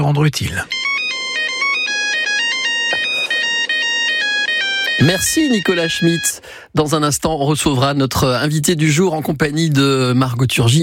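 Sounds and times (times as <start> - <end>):
speech: 0.0 - 0.8, 5.0 - 10.8
old polyphonic mobile phone ringtone playing a bouncy melody: 0.6 - 6.7.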